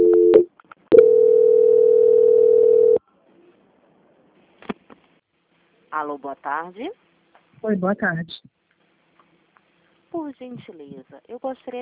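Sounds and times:
brief telephone beep during a call transfer: 0:00.0 - 0:03.0
speech: 0:06.0 - 0:08.5, 0:10.1 - 0:11.7.

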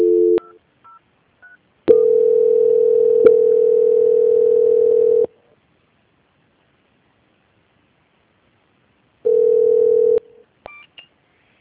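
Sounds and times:
telephone tone during a call transfer to a quality-control department: 0:00.0 - 0:00.6, 0:01.9 - 0:05.3, 0:09.3 - 0:10.3.

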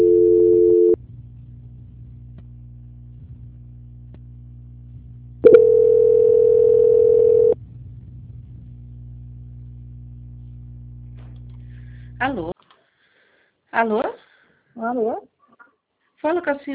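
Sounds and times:
steady telephone line tone while a call is transferred: 0:00.0 - 0:01.0, 0:05.4 - 0:07.6
low telephone line hum: 0:00.0 - 0:12.6
speech: 0:13.8 - 0:14.2, 0:14.8 - 0:15.3, 0:16.2 - 0:16.7.

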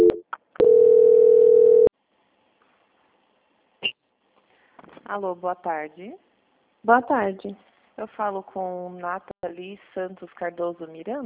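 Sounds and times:
steady telephone line tone as a bank call is transferred: 0:00.0 - 0:01.9
speech: 0:05.1 - 0:11.2.

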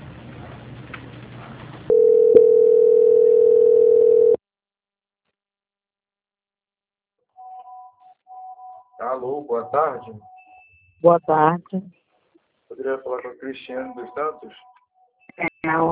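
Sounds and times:
steady single-pitch telephone line tone while a call is transferred: 0:01.9 - 0:04.4
faint brief higher beeps: 0:08.3 - 0:10.9, 0:13.7 - 0:15.8
speech: 0:09.4 - 0:10.3, 0:11.0 - 0:12.0, 0:12.7 - 0:14.7, 0:15.4 - 0:15.9.

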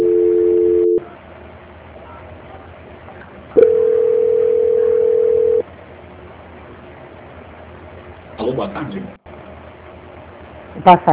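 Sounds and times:
telephone tones during a call transfer: 0:00.0 - 0:01.0, 0:03.6 - 0:05.6
quiet telephone line hum: 0:00.0 - 0:11.1
speech: 0:10.8 - 0:11.1.

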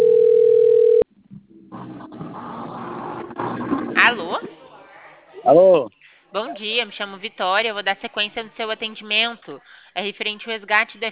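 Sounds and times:
electronic telephone tone on an outgoing call: 0:00.0 - 0:01.0
speech: 0:05.5 - 0:11.1.

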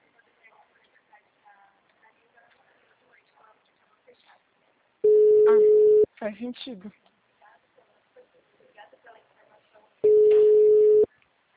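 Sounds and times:
phone call tone to a number that does not answer: 0:05.0 - 0:06.1, 0:10.0 - 0:11.1
speech: 0:06.2 - 0:07.1.

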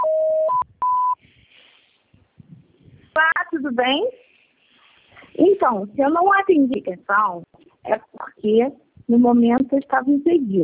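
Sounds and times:
short higher voicemail beeps: 0:00.0 - 0:01.2
telephone voicemail signal tone: 0:00.0 - 0:01.2
faint hiss: 0:01.1 - 0:10.3
speech: 0:03.5 - 0:04.2, 0:05.4 - 0:10.6.

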